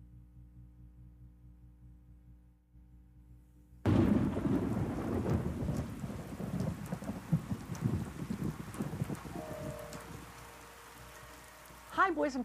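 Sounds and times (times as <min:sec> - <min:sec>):
deep rumbling thunder: 0:03.9 - 0:10.5
steady heavy rain in a thunderstorm: 0:03.9 - 0:12.4
speech: 0:12.1 - 0:12.4.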